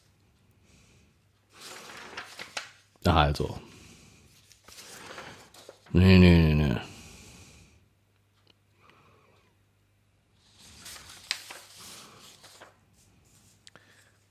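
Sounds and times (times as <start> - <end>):
paper pages being flipped through: 1.5 - 2.9, 4.4 - 5.9, 10.4 - 13.6
speech: 3.0 - 3.7, 5.9 - 6.4.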